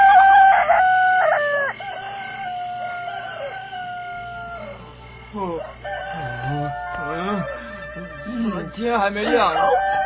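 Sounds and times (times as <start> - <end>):
man imitating a rooster crowing: 0.0 - 1.7, 5.5 - 10.0
speech: 8.9 - 9.9.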